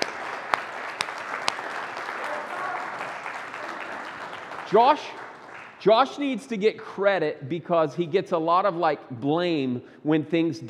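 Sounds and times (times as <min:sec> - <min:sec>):
audience applause: 0:00.0 - 0:05.8
speech: 0:04.7 - 0:05.2, 0:05.8 - 0:10.6.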